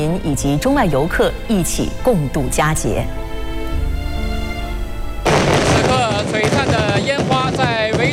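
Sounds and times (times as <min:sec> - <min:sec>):
speech: 0:00.1 - 0:03.3
steady tonal musical passage: 0:00.6 - 0:07.0
fireworks crackling bursts over Victoria Harbour, Hong Kong: 0:05.2 - 0:08.1
whistling firework rockets: 0:05.3 - 0:08.1.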